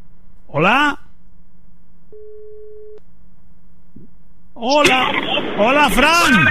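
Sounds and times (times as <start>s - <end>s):
low constant telephone line hum: 0.0s - 6.4s
speech: 0.6s - 1.0s, 4.6s - 6.4s
telephone ringing tone: 2.2s - 3.0s.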